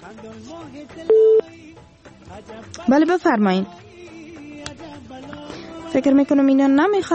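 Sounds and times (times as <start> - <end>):
speech: 0.1 - 7.1
telephone line beep as a listener's call is connected: 1.1 - 1.5.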